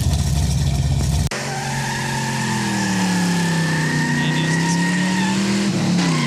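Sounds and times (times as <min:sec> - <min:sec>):
low rumble: 0:00.0 - 0:01.3
car engine humming with a whining tone: 0:00.0 - 0:06.2.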